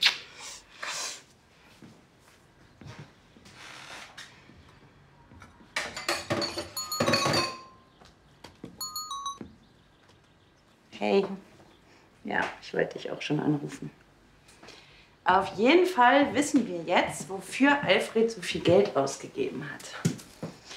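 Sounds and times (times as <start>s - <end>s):
cups and crockery clinking while making tea: 6.0s - 7.8s
bright ringing taps: 6.4s - 7.8s, 8.8s - 9.5s
speech: 11.0s - 11.4s, 12.3s - 14.0s, 15.3s - 20.1s.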